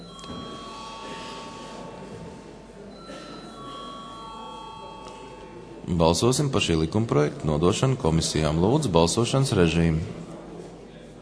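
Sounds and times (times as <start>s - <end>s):
bright electric parliament chamber bell rung before a vote: 0.0s - 5.8s
murmur of a large room and indistinct voices: 0.0s - 11.2s
speech: 5.9s - 10.3s.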